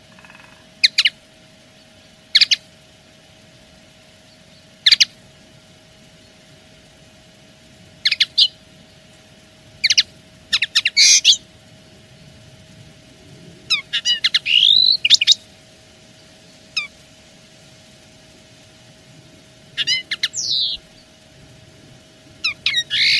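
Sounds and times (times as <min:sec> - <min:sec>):
wild-caught common linnet singing twitters and whistled notes: 0:00.0 - 0:02.7, 0:04.2 - 0:05.2, 0:08.0 - 0:08.8, 0:09.8 - 0:11.5, 0:13.7 - 0:15.5, 0:19.8 - 0:21.2, 0:22.4 - 0:23.1.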